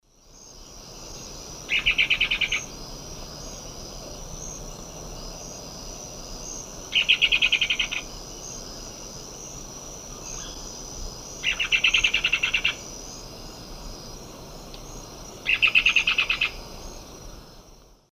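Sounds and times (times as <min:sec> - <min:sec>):
Cercomacra serva alarm call in Eastern Lowlands of South America: 0:01.7 - 0:02.7, 0:06.9 - 0:08.0, 0:11.4 - 0:12.8, 0:15.4 - 0:16.6.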